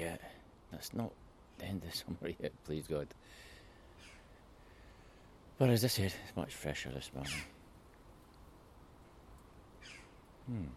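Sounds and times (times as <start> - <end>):
speech: 0.0 - 4.1, 5.6 - 7.6, 9.8 - 10.7
crow cawing: 3.8 - 5.2, 9.8 - 10.2.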